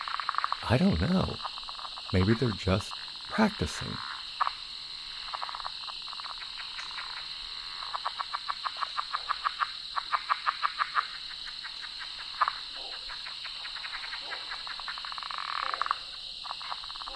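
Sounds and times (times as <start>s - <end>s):
leopard frogs giving rapid pulsing snore-like calls: 0.0s - 17.1s
speech: 0.7s - 4.1s.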